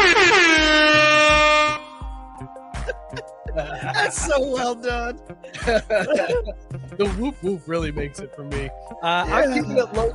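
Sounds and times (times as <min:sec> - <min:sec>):
loud brassy air horn blast: 0:00.0 - 0:02.1
rhythmic low thumps: 0:00.0 - 0:10.1
laughter: 0:02.8 - 0:08.2, 0:09.2 - 0:10.1
speech: 0:04.1 - 0:10.1.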